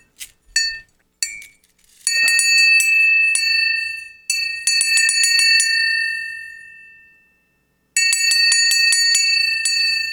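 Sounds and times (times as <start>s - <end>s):
bright metallic bell that has been through an atomic blast ringing: 2.1s - 7.4s, 8.0s - 10.1s.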